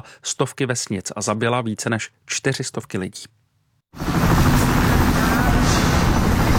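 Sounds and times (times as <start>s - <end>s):
speech: 0.0s - 4.3s
military helicopter rotor thumping: 4.0s - 6.5s.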